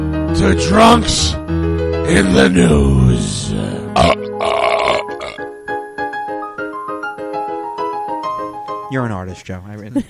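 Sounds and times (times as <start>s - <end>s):
speech: 0.4s - 4.5s, 9.2s - 10.0s
loud raspy burp: 3.6s - 5.5s.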